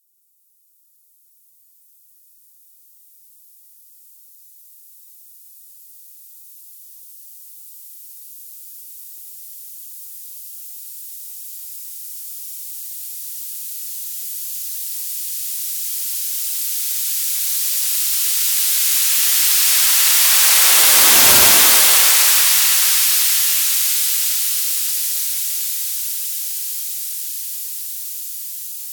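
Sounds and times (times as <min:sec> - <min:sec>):
experimental stereo noise: 0:18.2 - 0:24.9.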